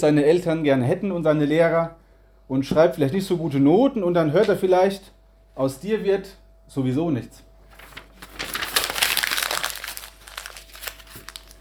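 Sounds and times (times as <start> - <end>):
speech: 0.0 - 7.5
crinkly material being stuffed into a pot: 7.7 - 11.6.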